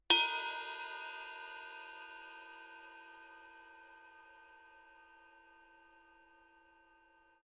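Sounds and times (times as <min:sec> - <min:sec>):
heavy ride cymbal bell: 0:00.1 - 0:06.8.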